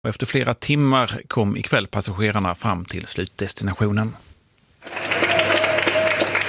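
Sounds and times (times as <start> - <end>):
speech: 0.0 - 5.0
applause from relatives welcoming arriving airline passengers: 4.8 - 6.4.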